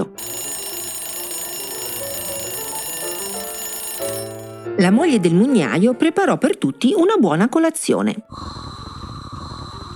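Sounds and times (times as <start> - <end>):
alarm clock ringing: 0.0 - 4.7
speech: 4.8 - 8.6.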